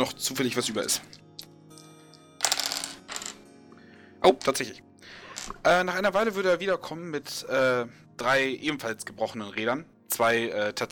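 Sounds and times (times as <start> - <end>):
speech: 0.0 - 1.2, 4.2 - 10.9
faint steady tonal background: 0.0 - 10.9
dice rolled during a game rattling: 2.4 - 3.4.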